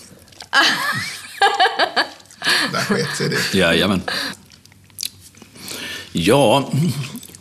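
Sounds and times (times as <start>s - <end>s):
chewing a chocolate praline: 0.0s - 0.6s, 4.3s - 5.8s, 6.8s - 7.3s
laughter: 0.6s - 4.4s
speech: 0.6s - 4.4s, 6.1s - 7.2s.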